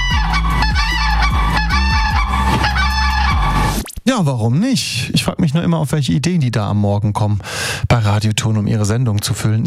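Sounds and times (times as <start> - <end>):
mated pair of common cranes trumpeting in duet: 0.0 - 3.8
speech: 4.1 - 9.6.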